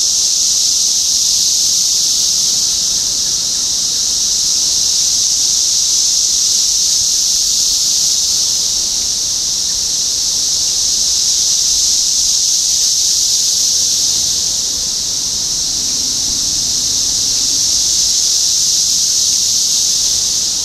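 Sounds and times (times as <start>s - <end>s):
chorus of cicadas buzzing in Topeka Kansas: 0.0s - 20.6s.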